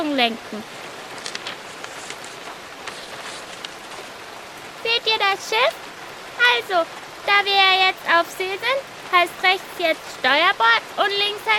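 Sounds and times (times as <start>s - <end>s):
speech: 0.0s - 0.8s, 5.0s - 5.8s, 6.4s - 11.5s
steady rain: 0.0s - 11.5s.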